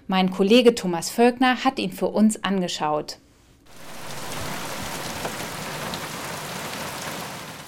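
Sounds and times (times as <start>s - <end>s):
speech: 0.1s - 3.9s
heavy rain pouring: 3.7s - 7.6s.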